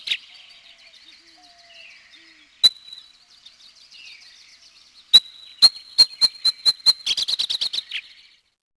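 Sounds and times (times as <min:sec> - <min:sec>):
faint twittering: 0:00.0 - 0:08.4
Abert's Towhee sharp calls speeding into squealing chatter: 0:02.6 - 0:03.1, 0:05.1 - 0:08.2.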